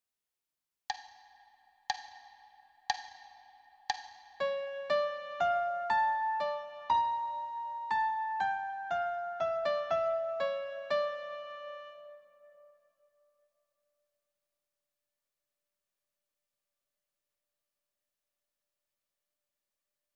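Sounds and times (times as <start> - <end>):
piano in D minor: 4.4 - 12.9.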